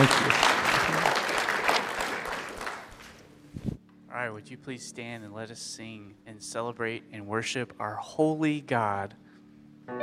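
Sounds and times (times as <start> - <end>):
audience applauding: 0.0 - 3.3
speech: 4.2 - 9.2, 9.9 - 10.0.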